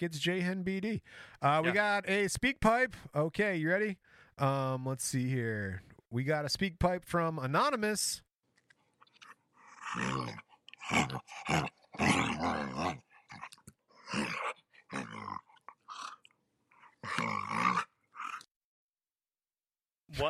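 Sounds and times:
speech: 0.0s - 8.2s, 9.9s - 13.1s, 14.1s - 15.5s, 17.0s - 17.9s, 20.1s - 20.2s
dog growling and snarling: 9.6s - 18.5s.

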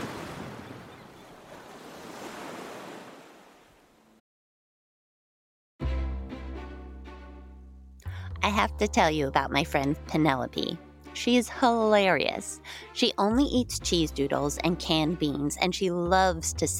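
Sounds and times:
gigantic ocean swells breaking: 0.0s - 4.0s
music: 5.8s - 16.7s
speech: 8.5s - 16.7s.

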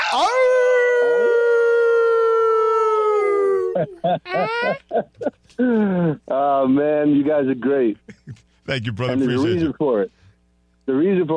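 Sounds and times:
human voices imitating a sustained wolf howl: 0.0s - 3.8s
speech: 0.1s - 0.6s, 3.8s - 10.2s, 10.9s - 11.3s
short bursts of excited vocalizing: 8.1s - 9.8s.

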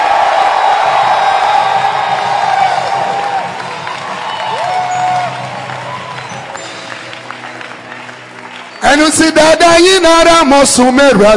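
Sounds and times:
large crowd cheering and whooping: 0.0s - 8.9s
large crowd applauding: 0.0s - 10.0s
speech: 9.2s - 11.3s.

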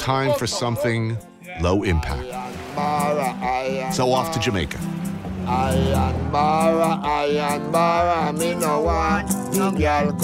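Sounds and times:
speech: 0.0s - 4.9s, 5.5s - 10.2s
car engine humming inside a driving car: 2.3s - 8.8s.

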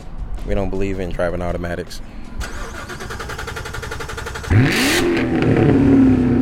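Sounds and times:
speech: 0.4s - 2.2s
C7 Corvette V8 engine revving in a strip mall parking lot: 2.4s - 6.3s.

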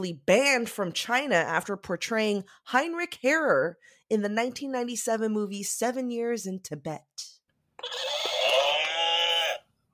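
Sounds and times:
speech: 0.0s - 8.1s
horse neigh used as quiz buzzer: 7.8s - 9.6s.

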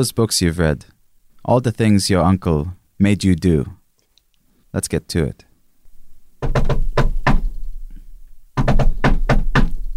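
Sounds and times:
speech: 0.0s - 3.8s, 4.7s - 5.5s, 6.4s - 6.9s
firm loud knocking on a wooden door: 6.4s - 7.5s, 8.6s - 9.8s.

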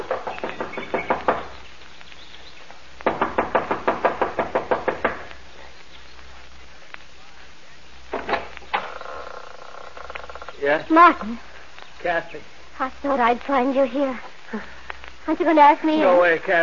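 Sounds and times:
woman knocking impatiently on the wooden front door of a mountain lodge: 0.1s - 1.5s, 3.1s - 5.3s
speech: 10.7s - 16.6s.

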